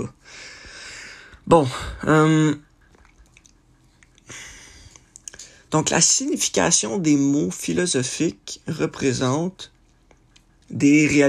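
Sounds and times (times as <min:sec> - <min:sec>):
speech: 0:00.0 - 0:00.5, 0:01.5 - 0:02.7, 0:05.7 - 0:09.7, 0:10.7 - 0:11.2
water sloshing in a hot tub with a person sitting in it: 0:02.2 - 0:04.3.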